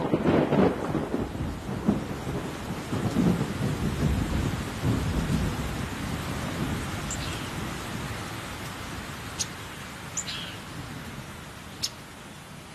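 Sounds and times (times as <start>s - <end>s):
deep thunder rumbling: 0.0s - 9.2s
heavy rain pouring in a thunderstorm: 0.0s - 12.7s.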